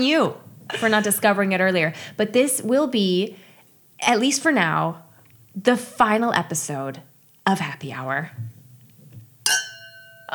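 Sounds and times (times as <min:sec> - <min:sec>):
speech: 0:00.0 - 0:03.4, 0:04.0 - 0:05.0, 0:05.6 - 0:08.5
two glasses clinking in a toast: 0:09.4 - 0:10.3.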